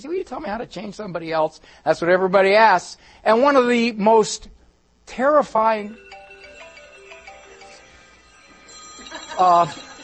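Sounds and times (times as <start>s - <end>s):
speech: 0.0s - 6.1s, 9.4s - 9.9s
phone ringtone: 5.8s - 10.0s.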